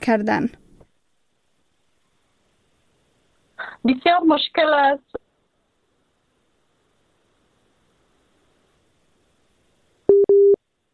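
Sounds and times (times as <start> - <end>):
speech: 0.0 - 0.6, 3.8 - 5.2
telephone busy tone after a dropped call: 10.1 - 10.6.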